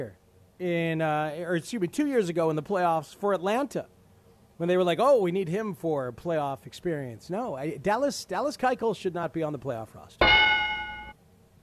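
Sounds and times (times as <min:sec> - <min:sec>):
speech: 0:00.0 - 0:04.0, 0:04.6 - 0:10.5
correct-answer buzzer ding sound effect: 0:10.2 - 0:11.2.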